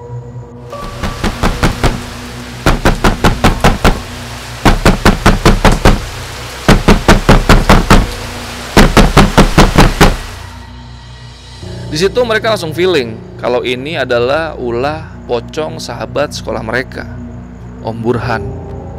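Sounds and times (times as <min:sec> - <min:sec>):
steady hiss: 0:00.6 - 0:17.9
loud forceful pounding on a door: 0:00.8 - 0:08.2, 0:08.8 - 0:10.4
speech: 0:11.9 - 0:17.2, 0:17.8 - 0:18.6.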